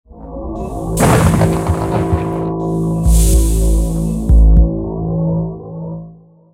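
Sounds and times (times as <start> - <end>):
technical suspense music: 0.1 - 6.4.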